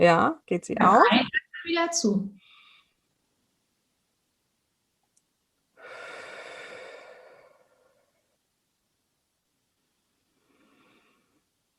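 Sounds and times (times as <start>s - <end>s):
speech: 0.0s - 2.4s
slow breathing during a breathing exercise: 5.8s - 8.4s, 10.3s - 11.5s.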